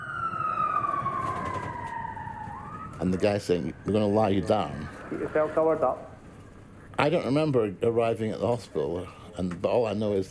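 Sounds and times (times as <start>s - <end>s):
ambulance siren wailing: 0.0s - 6.2s
speech: 3.0s - 6.1s, 7.0s - 10.2s.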